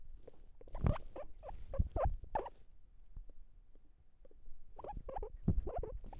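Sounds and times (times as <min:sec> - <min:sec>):
guinea pig chattering: 0:00.6 - 0:02.5, 0:04.2 - 0:05.9.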